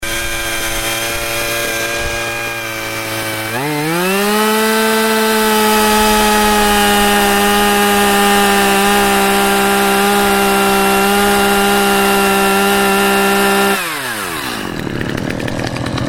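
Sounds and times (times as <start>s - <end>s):
chainsaw at 100-115 dB: 0.0s - 16.0s.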